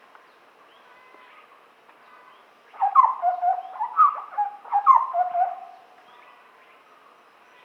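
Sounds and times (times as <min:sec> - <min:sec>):
large scimitar babbler hooting whistles: 0:02.8 - 0:05.8.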